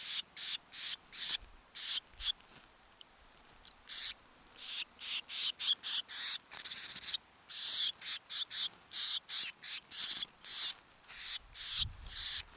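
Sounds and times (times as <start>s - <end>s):
Eurasian blue tit scold notes: 0.0s - 12.5s.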